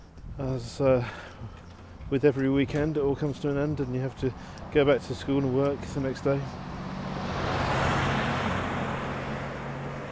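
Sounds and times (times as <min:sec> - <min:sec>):
speech: 0:00.4 - 0:06.7
large pickup truck driving past with deep engine drone and road roar: 0:06.6 - 0:10.1.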